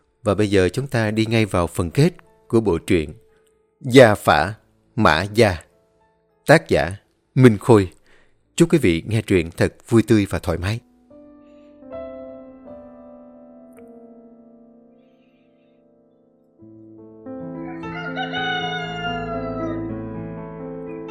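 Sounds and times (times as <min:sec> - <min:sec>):
speech: 0:00.2 - 0:03.2, 0:03.8 - 0:05.7, 0:06.5 - 0:08.0, 0:08.6 - 0:10.9
rooster crowing at dawn: 0:17.6 - 0:20.0.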